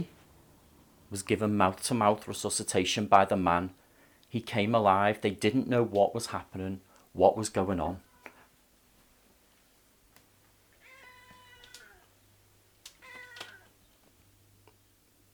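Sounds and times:
speech: 1.1s - 8.1s
cat meowing with drawn-out wavering cries: 8.0s - 8.5s, 10.8s - 12.1s, 12.9s - 13.8s.

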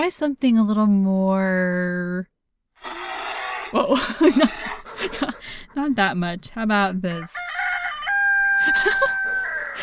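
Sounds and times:
speech: 0.0s - 3.0s, 3.7s - 7.4s, 8.6s - 9.8s
laughter: 3.8s - 5.9s, 8.5s - 9.8s
rooster crowing: 7.2s - 9.8s.

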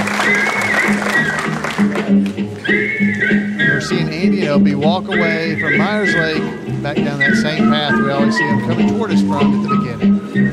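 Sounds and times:
crowd cheering and applauding: 0.0s - 3.3s
speech: 4.5s - 10.5s.

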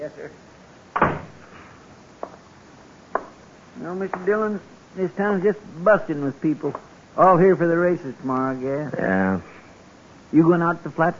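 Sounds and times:
speech: 0.0s - 1.1s, 3.8s - 9.6s, 10.3s - 11.1s
door shutting: 1.0s - 1.4s.

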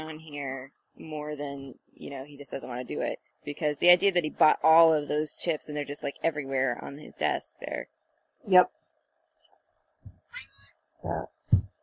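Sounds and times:
speech: 0.0s - 8.8s, 10.3s - 11.4s
low thumps: 10.0s - 10.4s, 11.0s - 11.8s
cat meowing: 10.3s - 10.7s.

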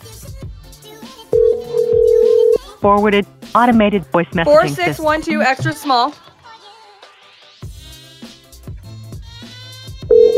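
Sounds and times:
incoming telephone call tone: 1.4s - 2.6s, 10.1s - 10.3s
speech: 2.8s - 6.3s.

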